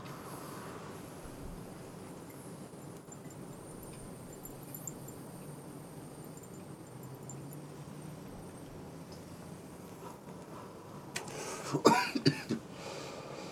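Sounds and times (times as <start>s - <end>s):
low hiss: 0.0s - 13.5s
person coughing after a vaporizer hit: 11.7s - 12.6s.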